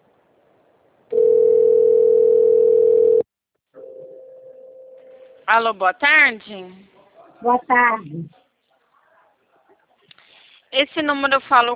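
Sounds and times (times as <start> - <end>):
telephone ringback tone on a call: 1.1 - 3.2
speech: 5.5 - 8.4, 10.7 - 11.7.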